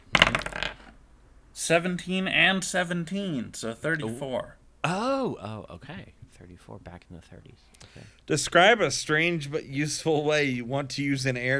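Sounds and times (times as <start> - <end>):
dice clattering across a hard surface: 0.0 - 1.1
speech: 1.6 - 11.5.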